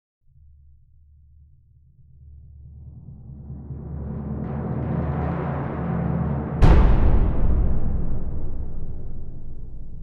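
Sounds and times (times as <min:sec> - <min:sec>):
crescendo timpani hit: 0:04.4 - 0:10.0.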